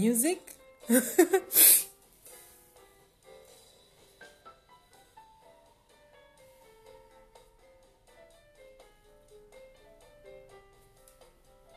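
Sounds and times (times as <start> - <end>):
speech: 0.0 - 1.8
person sneezing: 1.4 - 1.9.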